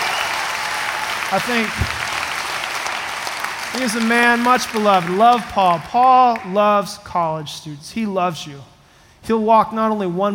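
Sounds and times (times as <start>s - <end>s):
audience applause at a college gathering: 0.0s - 6.5s
speech: 1.3s - 2.0s, 3.7s - 8.7s, 9.3s - 10.3s.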